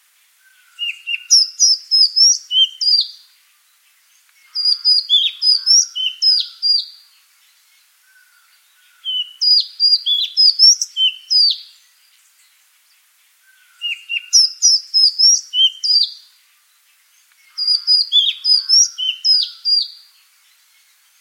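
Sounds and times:
Madagascar magpie-robin song of whistles and chirps: 0.8s - 3.2s, 4.5s - 7.0s, 9.0s - 11.7s, 13.8s - 16.2s, 17.5s - 20.0s.

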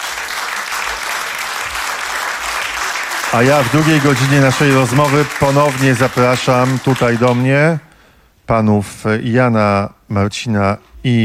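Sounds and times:
dense audience applause for guest performers: 0.0s - 7.8s
speech: 3.3s - 7.9s, 8.5s - 11.2s.

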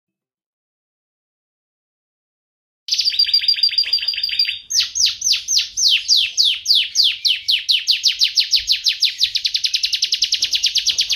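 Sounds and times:
bird song with trill and descending whistled sweeps: 2.9s - 11.1s.

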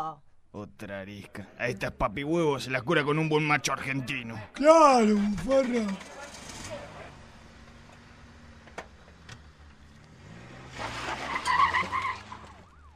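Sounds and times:
speech: 0.0s - 6.8s
Ford Falcon tires skidding: 5.1s - 12.9s
Ford Falcon car accelerating hard: 5.9s - 12.9s.

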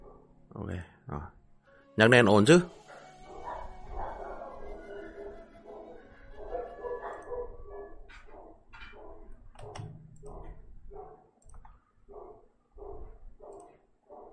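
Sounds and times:
neighbour's dog barking in sharp high yips: 0.0s - 0.3s, 2.9s - 11.3s, 12.1s - 14.3s
low steady background: 0.0s - 14.3s
speech: 0.6s - 1.4s, 2.0s - 2.8s.

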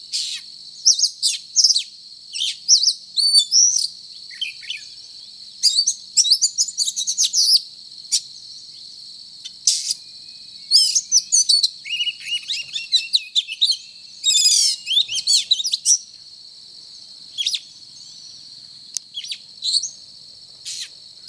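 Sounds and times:
Oriental magpie-robin singing scratchy chirps and whistled phrases: 0.1s - 8.8s, 9.4s - 16.2s, 16.9s - 21.2s.

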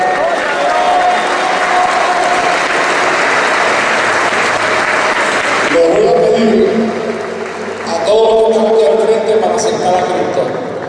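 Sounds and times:
church congregation applauding: 0.0s - 10.8s.

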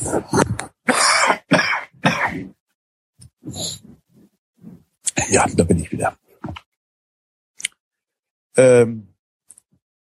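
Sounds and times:
speech: 0.1s - 0.4s, 5.3s - 6.2s, 8.6s - 9.1s
person with a cold clearing throat and coughing: 0.8s - 2.6s.

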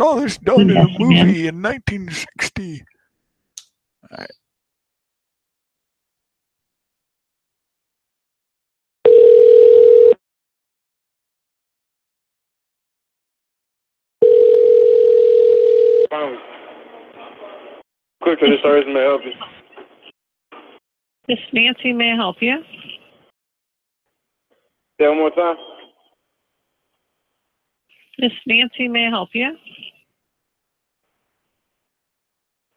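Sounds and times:
garbled voice-like sounds: 0.0s - 2.8s, 4.0s - 4.4s
speech: 0.0s - 2.9s, 4.0s - 4.4s, 16.1s - 16.6s, 18.2s - 19.6s, 21.3s - 23.0s, 25.0s - 25.8s, 28.2s - 29.9s
dial tone from a telephone taken off the hook: 9.1s - 10.2s, 14.2s - 16.1s.

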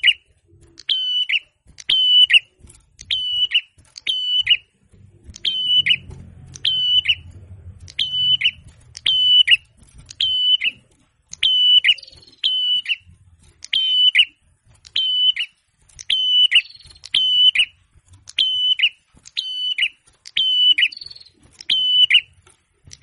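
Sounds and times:
prinia song of high flat whistles with burry endings: 0.0s - 22.3s
low rumble: 4.9s - 10.1s.

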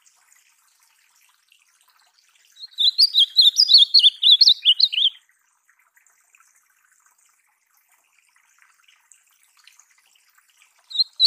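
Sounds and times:
ultramarine grosbeak song: 2.6s - 5.2s, 10.9s - 11.2s.

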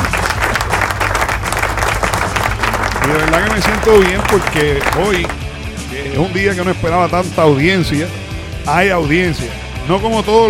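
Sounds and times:
audience clapping in a rock radio show studio: 0.0s - 5.5s
speech: 3.1s - 5.4s, 6.1s - 10.4s.

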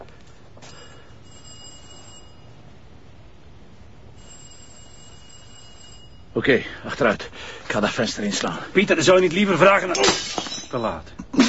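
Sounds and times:
doorbell ringing with a metallic jingle: 0.6s - 2.9s, 4.1s - 6.7s
speech: 6.4s - 11.2s.

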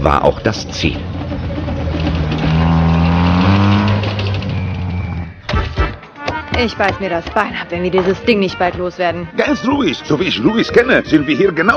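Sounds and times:
speech: 0.0s - 1.2s, 6.6s - 11.7s
truck loaded with melons driving off, engine rumbling: 0.0s - 5.4s.

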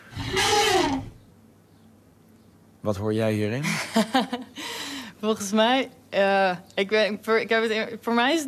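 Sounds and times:
happy elephant calling: 0.0s - 1.3s
speech: 2.8s - 8.4s.

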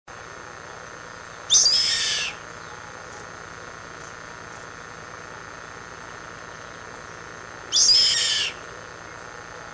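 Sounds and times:
electrical hum: 0.1s - 9.7s
yellow-headed caracara screaming: 1.5s - 2.4s, 7.7s - 8.6s.

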